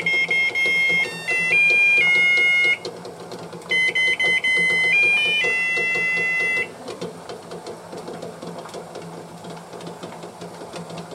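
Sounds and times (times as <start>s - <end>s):
musical egg timer playing a melody for soft-boiled egg: 0.0s - 2.9s, 3.7s - 6.7s.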